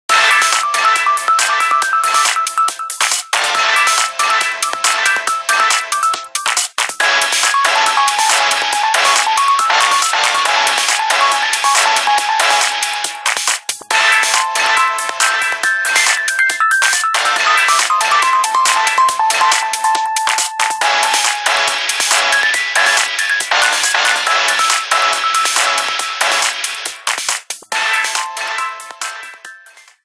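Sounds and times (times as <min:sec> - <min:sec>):
HTC Touch Diamond phone ringtone: 0:00.1 - 0:27.0, 0:27.7 - 0:30.0.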